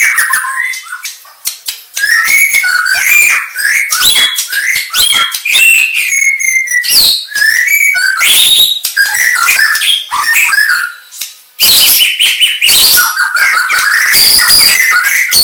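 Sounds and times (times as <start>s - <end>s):
Aceh variety white-rumped shama singing: 1.9s - 15.4s.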